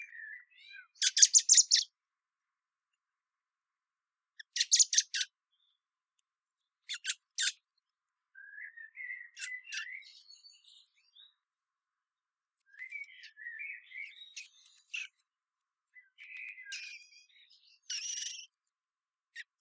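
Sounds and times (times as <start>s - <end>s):
faint thin squeaky bird notes: 0.0s - 1.9s, 4.4s - 5.8s, 6.9s - 7.6s, 8.4s - 11.4s, 12.6s - 15.2s, 16.0s - 18.6s.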